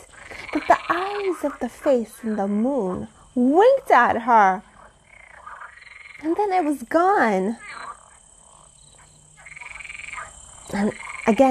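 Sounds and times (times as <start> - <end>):
green toad croaking loudly by a pond: 0.0 - 2.9, 4.8 - 6.4, 7.4 - 11.4
speech: 0.6 - 4.7, 6.2 - 7.6, 10.7 - 11.4.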